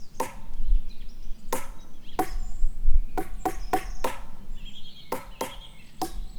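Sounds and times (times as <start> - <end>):
hollow wooden stick knocks: 0.2 - 0.8, 1.5 - 2.6, 3.2 - 4.5, 5.1 - 6.3.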